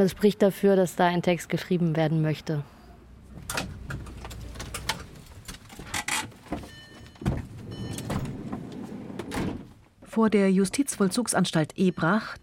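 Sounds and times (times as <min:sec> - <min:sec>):
speech: 0:00.0 - 0:02.8, 0:10.2 - 0:12.4
minibus engine rumbling as it pulls up outside a prison for young men: 0:02.9 - 0:09.8.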